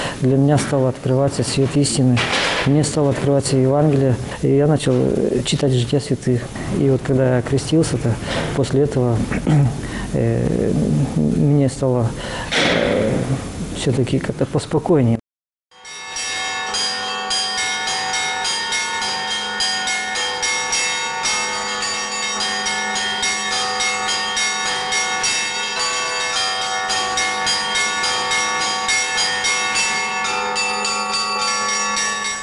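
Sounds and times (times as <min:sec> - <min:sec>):
speech: 0:00.2 - 0:12.6, 0:13.3 - 0:15.2
church bells ringing in a layered peal: 0:15.7 - 0:32.4.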